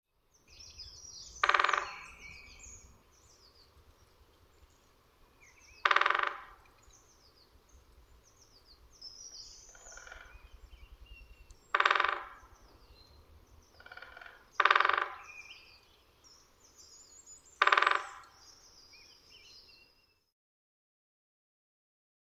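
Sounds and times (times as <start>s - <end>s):
loud rasping bird calls: 1.0s - 2.9s, 5.4s - 7.1s, 9.3s - 12.9s, 13.6s - 15.9s, 17.4s - 18.6s.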